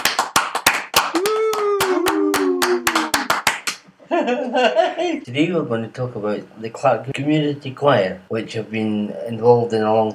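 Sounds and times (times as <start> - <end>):
small group clapping rhythmically: 0.0 - 4.0
whooping cheer: 1.1 - 3.3
laughter: 4.0 - 5.2
speech: 4.2 - 10.1.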